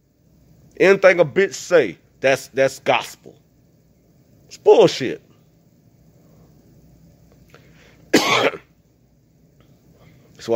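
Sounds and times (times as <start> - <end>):
speech: 0.8 - 3.4, 4.5 - 5.3
person coughing: 8.1 - 8.7.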